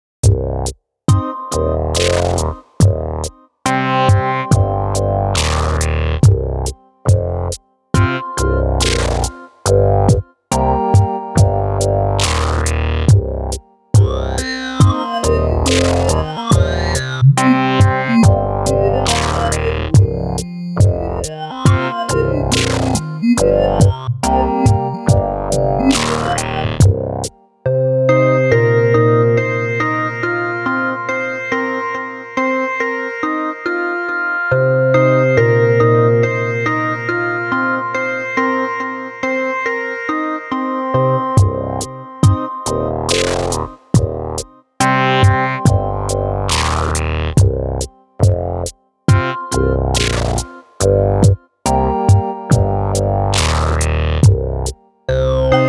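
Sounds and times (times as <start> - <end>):
downtempo synthesizer music: 1.1 - 55.6.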